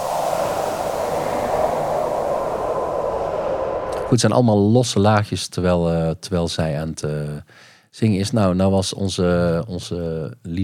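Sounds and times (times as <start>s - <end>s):
steady dense rain hiss: 0.0s - 4.2s
speech: 4.1s - 10.6s.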